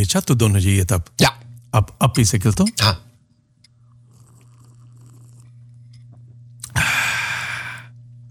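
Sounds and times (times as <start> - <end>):
speech: 0.0 - 3.1
faint low hum: 0.0 - 8.2
person slurping loudly: 4.1 - 5.6, 6.6 - 7.9.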